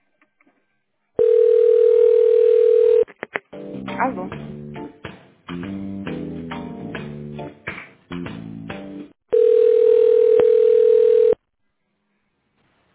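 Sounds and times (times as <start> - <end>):
telephone ringback tone while waiting for an operator: 1.2 - 3.0, 9.3 - 11.4
telephone hold music while waiting for an operator: 3.2 - 9.1.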